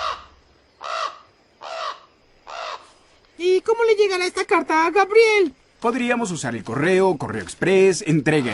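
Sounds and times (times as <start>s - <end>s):
crow cawing: 0.0s - 3.0s
speech: 3.6s - 8.5s.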